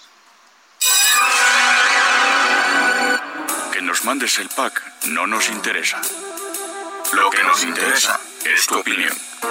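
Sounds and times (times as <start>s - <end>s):
loud electric buzzer bell ringing signaling a break: 0.8s - 3.7s
speech: 4.0s - 6.3s, 7.1s - 9.4s.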